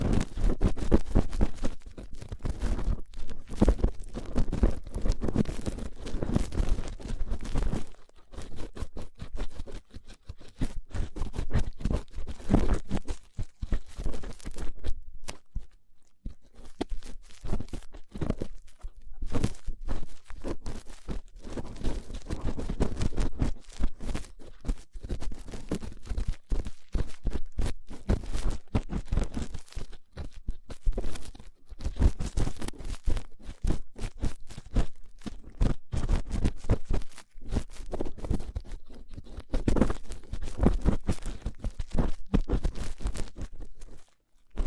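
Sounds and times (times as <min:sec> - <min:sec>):
rough ear cleaning scratching, crunching and crackling rubs: 0:00.0 - 0:44.6.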